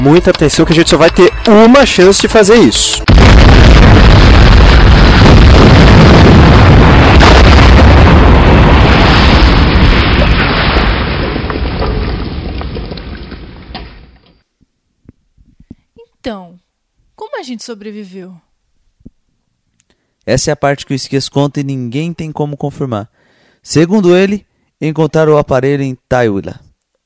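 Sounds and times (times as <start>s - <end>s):
speech: 0.0s - 5.0s, 17.4s - 18.5s, 20.2s - 26.6s
explosion: 3.0s - 14.2s.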